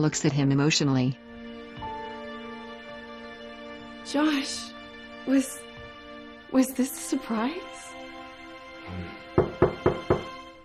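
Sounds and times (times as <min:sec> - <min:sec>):
speech: 0:00.0 - 0:01.3, 0:04.1 - 0:05.6, 0:06.5 - 0:07.9
firm knocking on a door: 0:09.3 - 0:10.5.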